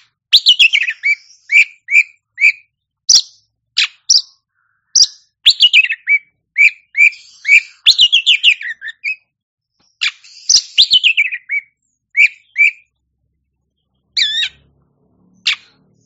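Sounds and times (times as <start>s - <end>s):
Oriental magpie-robin singing whistles and rasping chatter: 0.0s - 13.0s, 13.8s - 16.0s.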